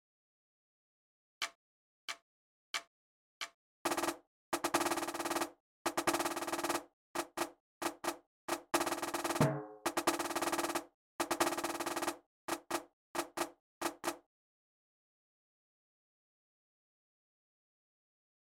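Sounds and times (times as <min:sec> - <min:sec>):
drum playing a calling rhythm: 0:03.9 - 0:14.2.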